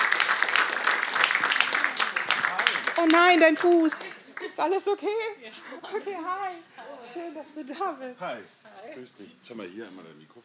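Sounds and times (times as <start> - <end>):
audience applause at a live event: 0.0 - 5.0
speech: 3.0 - 10.4.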